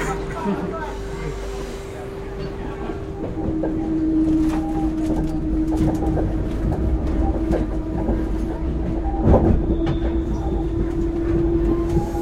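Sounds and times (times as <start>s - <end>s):
direct RER commuter train heading south from Paris rumbling along rails: 0.0s - 12.1s
RER commuter train wheels clattering and squeaking: 2.4s - 12.1s.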